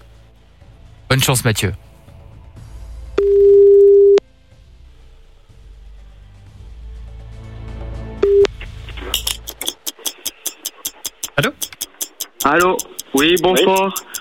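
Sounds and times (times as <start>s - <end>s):
speech: 1.2s - 1.9s, 12.5s - 14.1s
telephone line tones while calling a shop: 3.2s - 4.2s.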